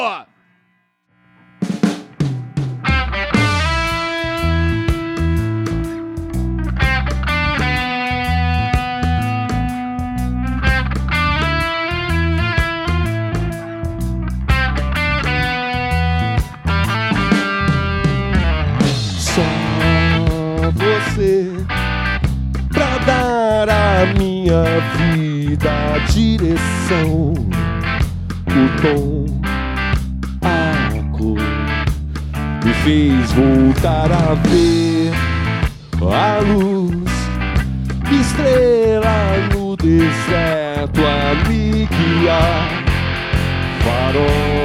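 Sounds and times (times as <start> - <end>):
speech: 0.0 - 0.3, 24.0 - 27.6, 28.6 - 29.2, 32.6 - 34.9, 36.0 - 37.0, 38.2 - 42.8, 43.9 - 44.6
bass: 1.4 - 44.6
drums: 1.4 - 44.6
layered guitars or keys: 1.6 - 44.6
person singing a vocal line: 19.2 - 21.7, 22.7 - 27.8, 28.5 - 29.5, 30.4 - 31.9, 32.6 - 43.0, 43.7 - 44.6.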